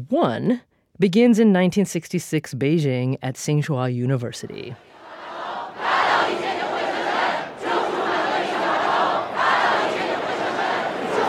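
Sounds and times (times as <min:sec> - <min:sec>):
speech: 0:00.0 - 0:05.0
large crowd shouting slogans in unison: 0:04.8 - 0:11.2.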